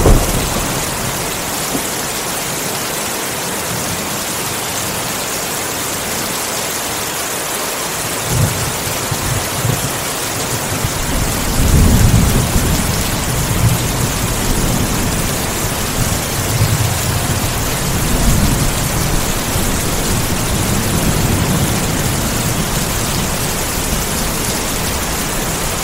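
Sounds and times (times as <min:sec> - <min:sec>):
low rumbling: 0:00.0 - 0:01.9
dense rain hissing outside a window: 0:00.0 - 0:25.8.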